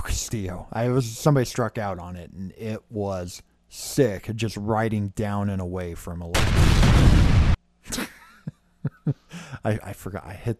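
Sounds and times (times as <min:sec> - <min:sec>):
speech: 0:00.0 - 0:07.3, 0:09.1 - 0:10.5
bomb explosion sound effect: 0:06.4 - 0:07.6.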